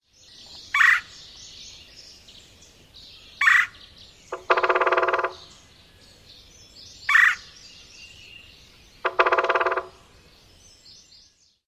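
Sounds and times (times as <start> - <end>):
Red-bellied Woodpecker querr calls: 0.4 - 1.2, 3.4 - 5.7, 7.0 - 7.6, 9.0 - 10.2
Red-bellied Woodpecker drumming: 3.4 - 5.6, 9.0 - 10.1.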